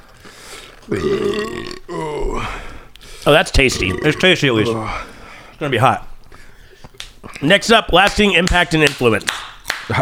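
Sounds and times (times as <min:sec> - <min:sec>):
loud guttural burps: 0:00.8 - 0:02.6, 0:03.6 - 0:04.8
speech: 0:00.9 - 0:06.1, 0:07.4 - 0:09.9.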